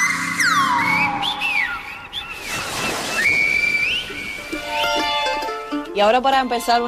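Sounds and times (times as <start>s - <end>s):
Canary Islands whistled language whistling: 0.0s - 5.4s
speech: 6.0s - 6.8s.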